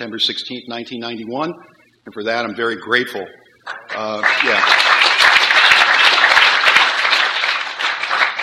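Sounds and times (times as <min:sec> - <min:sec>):
speech: 0:00.0 - 0:03.4, 0:04.0 - 0:04.9
crowd applauding loudly: 0:03.7 - 0:08.4.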